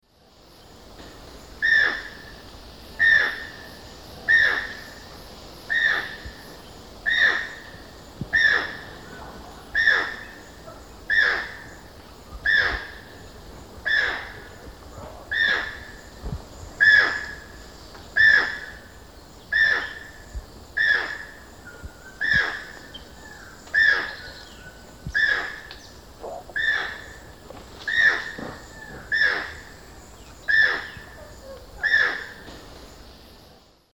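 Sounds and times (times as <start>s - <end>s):
Ramphastos vitellinus calls or song in Eastern Lowlands of South America: 1.6s - 2.4s, 3.0s - 5.0s, 5.7s - 6.4s, 7.0s - 11.8s, 12.4s - 13.2s, 13.8s - 14.6s, 15.3s - 16.2s, 16.8s - 32.5s.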